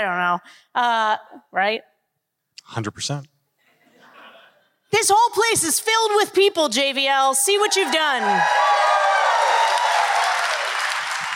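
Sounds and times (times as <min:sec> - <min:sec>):
speech: 0:00.0 - 0:01.9, 0:02.6 - 0:03.3, 0:04.9 - 0:09.1
large theater audience applause: 0:07.8 - 0:11.3.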